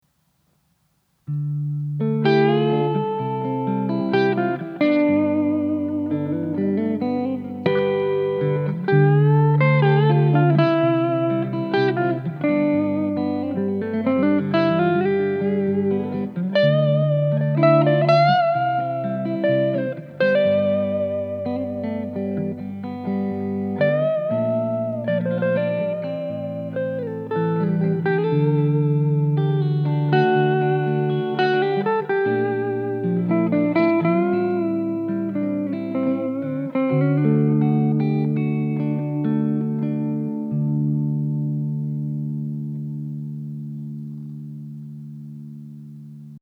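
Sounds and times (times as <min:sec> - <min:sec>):
clean Gibson Les Paul 1958 Standard Reissue electric guitar: 0:00.0 - 0:46.3.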